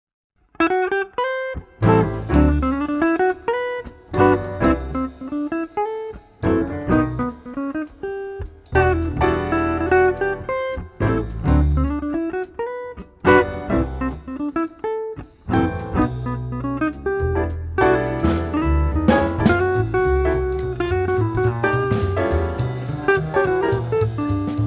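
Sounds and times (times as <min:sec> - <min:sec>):
jazz quartet bass: 0:01.8 - 0:05.4, 0:06.4 - 0:24.6
jazz quartet drums: 0:01.8 - 0:05.4, 0:06.3 - 0:12.0, 0:13.0 - 0:14.3, 0:17.4 - 0:24.6
jazz quartet acoustic guitar: 0:01.8 - 0:24.6
jazz quartet piano: 0:01.8 - 0:24.6.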